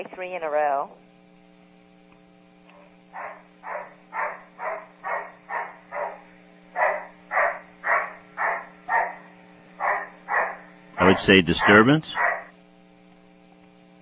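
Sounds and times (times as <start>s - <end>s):
speech: 0.0s - 1.1s, 3.1s - 3.9s, 11.0s - 12.2s
low steady hum: 0.0s - 14.0s
dog barking: 2.7s - 12.5s.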